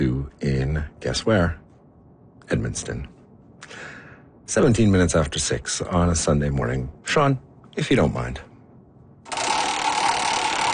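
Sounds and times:
speech: 0:00.0 - 0:01.6, 0:02.5 - 0:03.9, 0:04.5 - 0:08.5
prize wheel with pegs spinning and clicking in a studio kitchen: 0:09.3 - 0:10.7.

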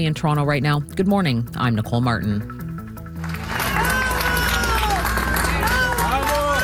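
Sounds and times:
speech: 0:00.0 - 0:02.6
people clapping: 0:03.2 - 0:06.6
crowd cheering and shouting in Venezuela after earthquakes: 0:03.4 - 0:06.6.

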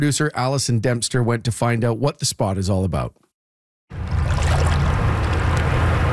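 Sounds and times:
speech: 0:00.0 - 0:03.2
roaring rush of fast-moving water: 0:04.0 - 0:05.7.

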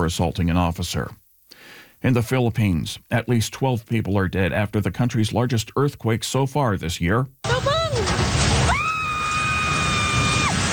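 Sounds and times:
speech: 0:00.0 - 0:01.2, 0:02.0 - 0:07.7
loud crashing and rumbling of building collapsing: 0:07.5 - 0:10.7
person screaming in terror as building collapses: 0:08.7 - 0:10.6.

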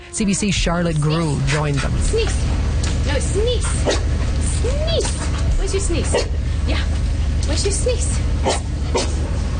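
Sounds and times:
steady noise in a hospital: 0:00.0 - 0:09.5
speech: 0:00.2 - 0:09.4
scent-detection dog barking in a hospital: 0:03.8 - 0:04.1, 0:06.1 - 0:06.4, 0:08.4 - 0:09.2.

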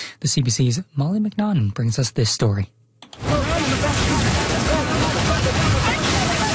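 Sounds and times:
speech: 0:00.2 - 0:02.8
small ocean waves washing onto a beach in Nova Scotia: 0:03.2 - 0:06.5
wind noise: 0:03.2 - 0:06.5.

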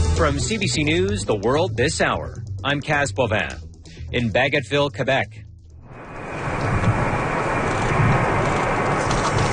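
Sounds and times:
speech: 0:00.2 - 0:05.4
passenger plane landing: 0:05.8 - 0:09.5.

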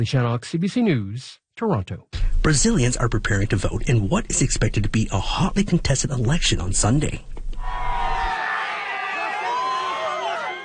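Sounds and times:
speech: 0:00.0 - 0:07.9
large crowd cheering at political campaign event: 0:07.6 - 0:10.6
people whooping in crowd: 0:07.6 - 0:10.6.

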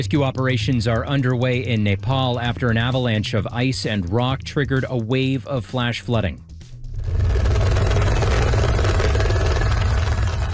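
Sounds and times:
speech: 0:00.0 - 0:06.5
helicopter hovering: 0:06.8 - 0:10.5.

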